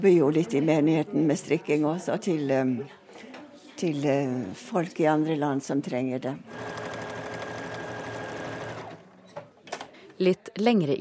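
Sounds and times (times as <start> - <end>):
speech: 0.0 - 3.0, 3.8 - 6.8, 10.2 - 11.0
sewing machine stitching a made-to-measure coat: 6.5 - 9.2.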